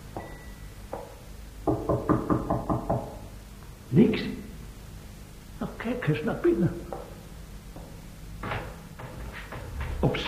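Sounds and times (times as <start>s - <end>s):
firm knocking on a door: 0.9s - 3.2s, 7.8s - 10.2s
speech: 4.0s - 4.4s, 6.0s - 7.1s.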